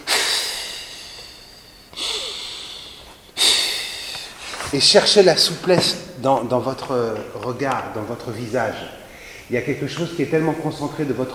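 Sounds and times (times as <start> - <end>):
deep exhalations during a breathing exercise: 0.0 - 4.8, 9.0 - 9.6
speech: 4.7 - 11.3.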